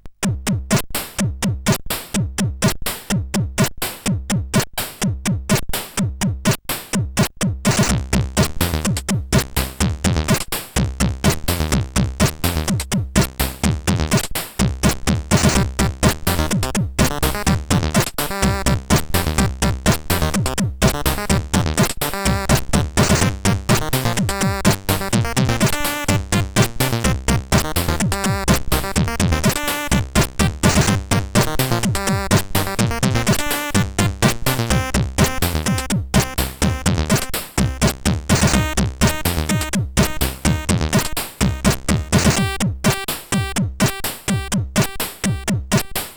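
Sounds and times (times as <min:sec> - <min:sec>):
SID CSG8580R5 chip music: 0:00.4 - 0:46.1.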